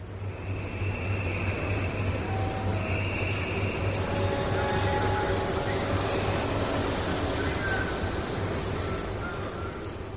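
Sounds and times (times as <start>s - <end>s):
train rolling along rails: 0.0s - 10.1s.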